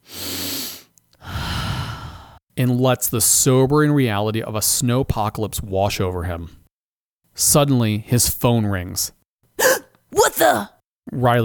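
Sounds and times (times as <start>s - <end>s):
deep breath drawn in slowly and let out: 0.0s - 2.4s
speech: 2.6s - 6.6s, 7.4s - 9.2s, 10.1s - 11.4s.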